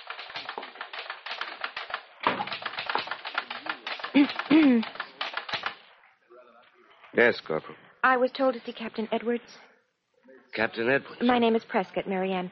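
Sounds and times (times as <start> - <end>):
typewriter keystrokes at Army headquarters: 0.0 - 5.8
speech: 4.2 - 5.0, 7.2 - 9.7, 10.6 - 12.5.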